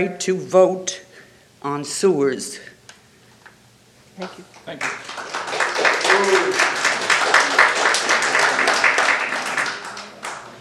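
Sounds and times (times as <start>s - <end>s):
speech: 0.0s - 1.0s, 1.6s - 2.7s, 4.2s - 5.3s
audience applause in a meeting room: 4.7s - 10.5s.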